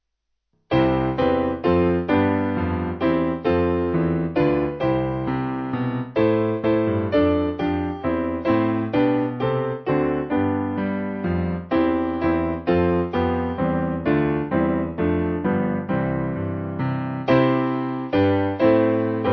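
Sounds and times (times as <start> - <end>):
piano: 0.7 - 19.3.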